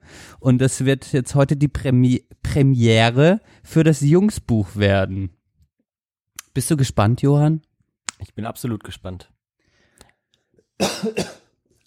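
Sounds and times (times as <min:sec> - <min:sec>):
speech: 0:00.4 - 0:05.4, 0:06.6 - 0:09.4, 0:10.8 - 0:11.4
throat clearing: 0:10.8 - 0:11.5.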